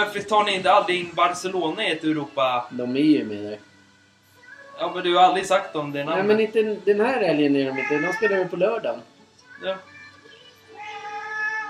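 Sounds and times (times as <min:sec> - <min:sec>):
speech: 0:00.0 - 0:03.7, 0:04.8 - 0:09.9
cat meowing: 0:07.6 - 0:08.6, 0:10.7 - 0:11.6.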